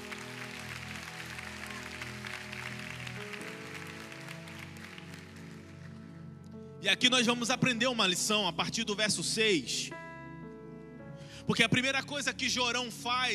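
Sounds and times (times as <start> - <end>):
crowd clapping: 0.0 - 6.1
speech: 6.8 - 10.0, 11.5 - 13.3.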